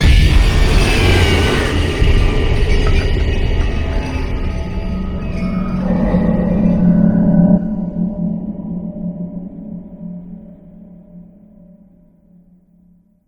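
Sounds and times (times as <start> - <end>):
screech: 0.0 - 8.7.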